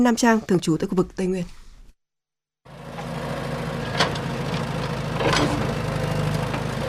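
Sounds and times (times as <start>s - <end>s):
speech: 0.0s - 1.6s
engines of trucks, excavators and machinery rumbling at an industrial park construction site: 2.7s - 6.8s.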